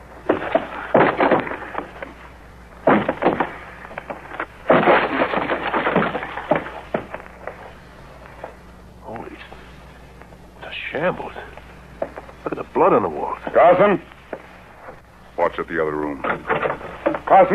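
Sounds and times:
wooden door being forced open with banging and splintering: 0.3s - 2.0s, 2.8s - 7.1s, 16.2s - 17.2s
speech: 12.8s - 14.1s, 15.6s - 17.5s.

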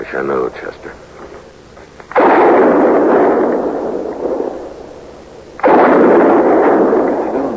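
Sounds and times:
speech: 0.0s - 1.0s
gunshots fired as a signal for help: 2.0s - 7.5s.

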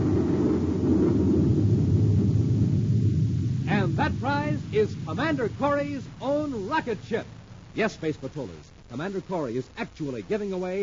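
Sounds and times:
thundering explosion sound effect: 0.0s - 7.8s
speech: 4.5s - 10.8s.

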